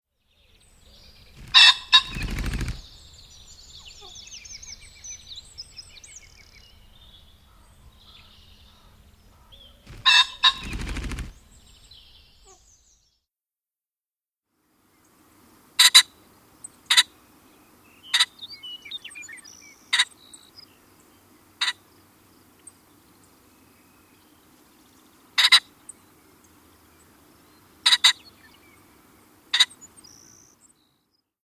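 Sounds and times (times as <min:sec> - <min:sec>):
Ring-necked Pheasant calling: 0:00.4 - 0:13.0, 0:15.0 - 0:30.8.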